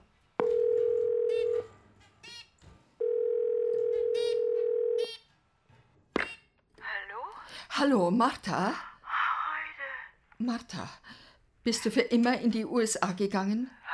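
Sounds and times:
telephone dial tone: 0.4s - 1.6s, 3.0s - 5.0s
speech: 7.8s - 8.9s, 10.4s - 13.8s.

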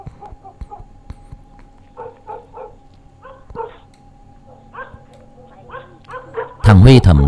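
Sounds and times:
low hum: 0.0s - 7.2s
dog barking out on the street at night: 0.2s - 0.9s, 2.0s - 3.9s, 4.5s - 6.8s
speech: 6.7s - 7.2s.

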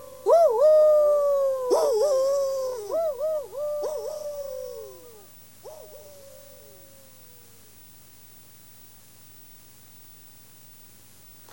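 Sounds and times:
person imitating a wolf howl with the voice: 0.0s - 7.7s.

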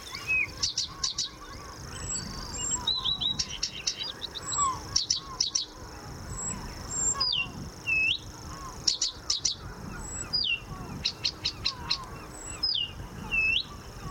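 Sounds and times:
varied bird song with imitations including marsh warbler phrases: 0.0s - 14.0s.

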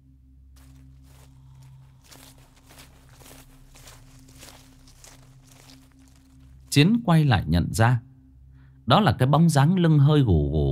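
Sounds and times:
slow scuffing footsteps approaching from behind: 0.6s - 7.0s
speech: 6.8s - 8.1s, 8.9s - 10.7s.

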